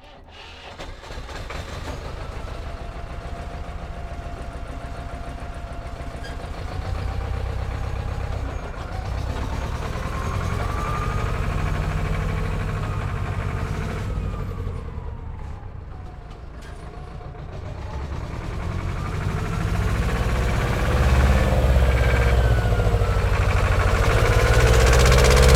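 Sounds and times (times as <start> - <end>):
old tractor: 0.0 - 25.5.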